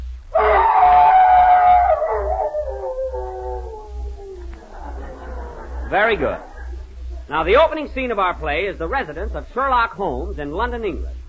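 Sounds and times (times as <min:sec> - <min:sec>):
steady low hum: 0:00.0 - 0:11.2
man's voice imitating a hound's howl: 0:00.3 - 0:04.6
laughter: 0:04.4 - 0:07.7
speech: 0:05.9 - 0:06.4, 0:07.3 - 0:11.2.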